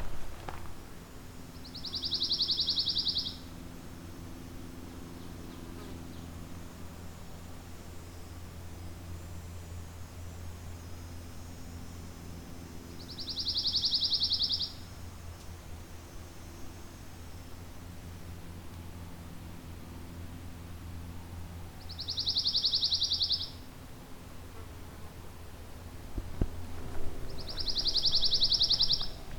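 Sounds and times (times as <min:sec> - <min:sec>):
steady outdoor hiss: 0:00.0 - 0:29.3
pine warbler singing trills: 0:01.6 - 0:03.5, 0:13.0 - 0:14.8, 0:21.8 - 0:23.6, 0:27.3 - 0:29.3.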